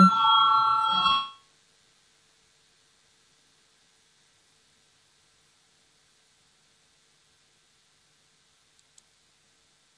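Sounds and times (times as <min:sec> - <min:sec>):
electric bell ringing in a parliament chamber to call a vote: 0:00.0 - 0:01.4.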